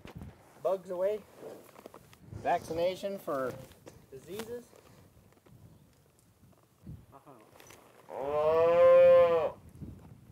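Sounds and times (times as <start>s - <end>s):
speech: 0.7s - 1.8s, 2.4s - 4.8s, 8.1s - 8.8s
cow mooing: 8.1s - 9.6s.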